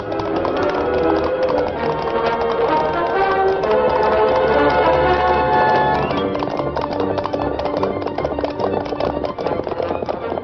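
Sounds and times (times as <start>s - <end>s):
horse galloping hard with rider urging it forward: 0.0s - 10.4s.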